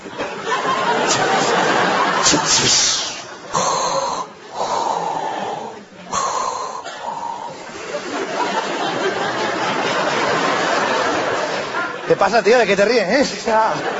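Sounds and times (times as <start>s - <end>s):
laughter: 0.0s - 4.1s, 5.0s - 13.9s
speech: 2.2s - 3.1s, 12.1s - 13.9s
voice imitating heavy mechanical helmet respirator breathing: 2.4s - 7.7s.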